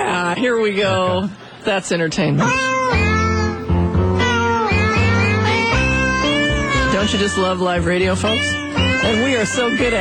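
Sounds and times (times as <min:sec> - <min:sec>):
speech: 0:00.4 - 0:03.0, 0:06.9 - 0:10.0
novelty song of sampled pitched cat meows over a bass-heavy backing beat: 0:02.4 - 0:10.0.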